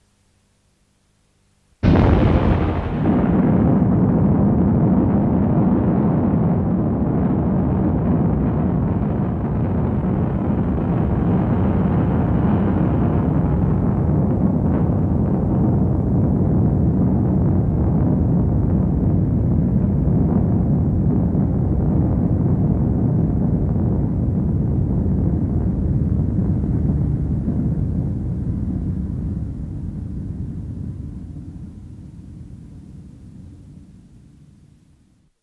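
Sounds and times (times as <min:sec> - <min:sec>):
deep boom from a distant explosion: 0:01.8 - 0:32.5
long heavy rumble: 0:01.8 - 0:33.5.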